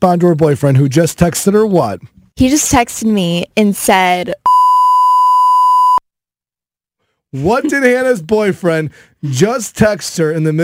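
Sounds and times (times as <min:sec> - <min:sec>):
speech: 0:00.0 - 0:04.5, 0:07.3 - 0:10.6
censor bleep tone masking a word: 0:04.4 - 0:06.0.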